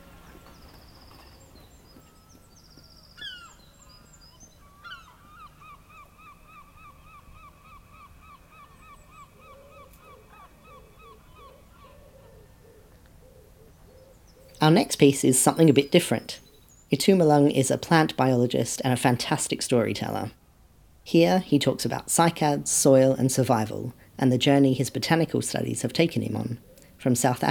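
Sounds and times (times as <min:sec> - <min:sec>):
seagulls calling agitatedly at a heron: 0:03.1 - 0:03.9, 0:04.7 - 0:12.5
speech: 0:14.6 - 0:20.4, 0:21.0 - 0:27.5.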